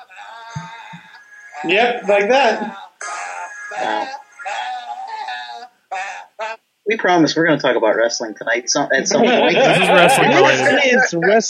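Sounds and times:
person singing a song imitating goat bleats: 0:00.0 - 0:06.5
speech: 0:01.6 - 0:02.8, 0:06.9 - 0:11.4
laughter: 0:09.0 - 0:11.4.

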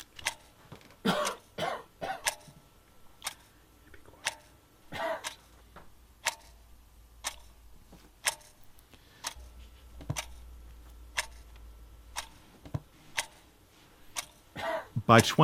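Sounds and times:
clock ticking: 0:00.0 - 0:01.4, 0:02.0 - 0:02.6, 0:03.2 - 0:03.5, 0:04.2 - 0:04.6, 0:05.2 - 0:05.5, 0:06.2 - 0:13.5, 0:14.1 - 0:14.4, 0:15.0 - 0:15.4
speech: 0:15.1 - 0:15.4.

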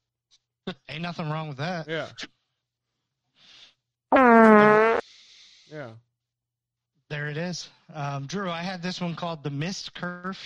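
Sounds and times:
speech: 0:00.7 - 0:02.3, 0:05.7 - 0:06.1, 0:07.1 - 0:10.4
fart sound effect from phone app: 0:04.1 - 0:05.0.

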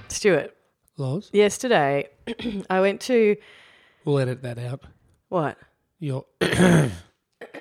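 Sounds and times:
speech: 0:00.2 - 0:07.0
person clearing throat: 0:02.3 - 0:02.7, 0:06.4 - 0:07.5.

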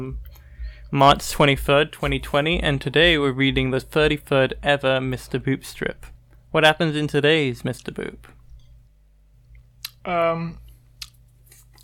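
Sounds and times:
speech: 0:00.0 - 0:08.4, 0:10.0 - 0:10.6
short hummed voice: 0:00.0 - 0:08.5
low steady hum: 0:00.0 - 0:11.8
wet mouth clicks: 0:09.5 - 0:10.0
chewing of pizza: 0:10.7 - 0:11.8.

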